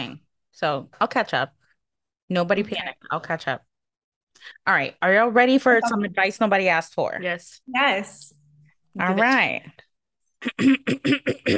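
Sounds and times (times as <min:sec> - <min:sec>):
speech: 0:00.0 - 0:01.6, 0:02.3 - 0:03.7, 0:04.4 - 0:08.4, 0:09.0 - 0:09.8, 0:10.4 - 0:11.5
person clearing throat: 0:10.4 - 0:11.5.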